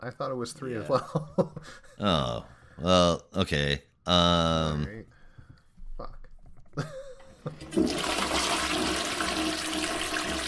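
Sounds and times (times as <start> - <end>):
speech: 0.0 - 5.1, 6.8 - 8.4
toilet flushing: 7.5 - 10.4.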